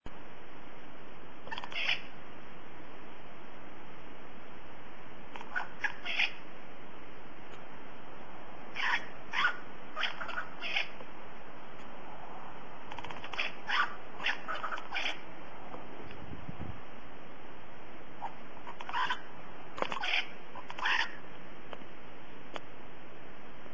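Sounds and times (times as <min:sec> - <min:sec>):
birds at a lagoon: 0:01.4 - 0:02.2, 0:05.3 - 0:06.6, 0:08.6 - 0:11.1, 0:12.8 - 0:16.2, 0:18.2 - 0:21.4.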